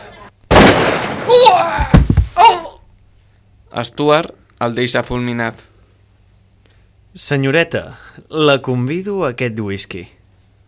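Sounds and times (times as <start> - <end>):
gunshot in a saloon shootout: 0.5 - 2.4
shot man groaning and crying: 1.3 - 2.8
speech: 3.8 - 5.7, 7.1 - 10.2.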